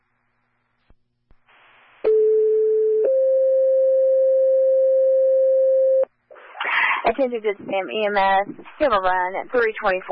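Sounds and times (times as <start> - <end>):
telephone busy signal tone: 2.0 - 6.1
speech: 7.2 - 10.1.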